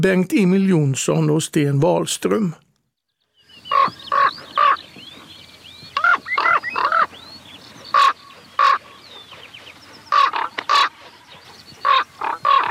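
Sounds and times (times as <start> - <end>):
speech: 0.0 - 2.7
common raven calling in flight: 3.6 - 4.9, 6.0 - 7.2, 7.9 - 9.4, 10.0 - 12.6.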